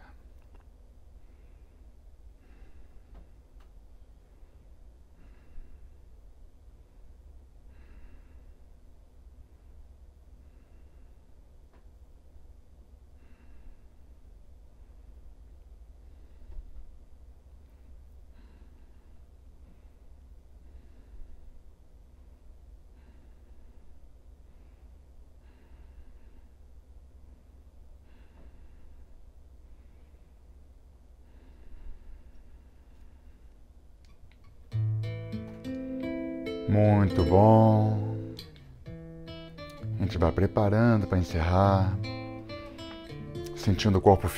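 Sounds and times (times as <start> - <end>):
quiet low hum: 0.0 - 44.3
slow deep breathing through the nostrils: 1.1 - 3.4, 4.2 - 6.1, 7.6 - 8.8, 9.4 - 11.4, 13.1 - 15.3, 16.0 - 17.0, 17.7 - 21.7, 22.3 - 33.9
speech: 36.7 - 38.0, 40.0 - 42.2, 43.6 - 44.3.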